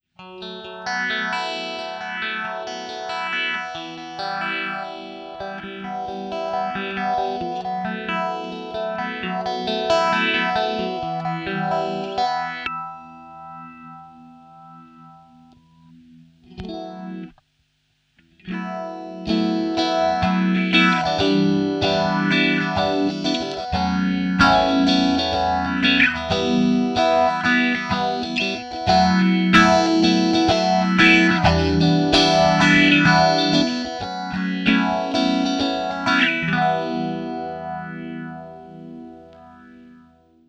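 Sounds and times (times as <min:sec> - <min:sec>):
guitar ultra phase shifter pedal effect: 0:01.0 - 0:17.4, 0:18.2 - 0:39.9.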